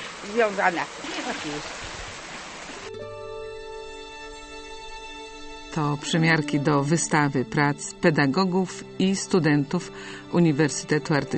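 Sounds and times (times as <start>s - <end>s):
water falling like light drizzle in a palm house in Poznań Poland: 0.0s - 3.0s
speech: 0.2s - 1.9s, 5.8s - 11.3s.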